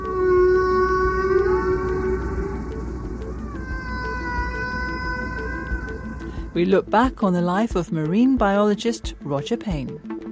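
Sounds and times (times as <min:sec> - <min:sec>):
humpback whale song: 0:00.0 - 0:06.6
speech: 0:06.6 - 0:10.1.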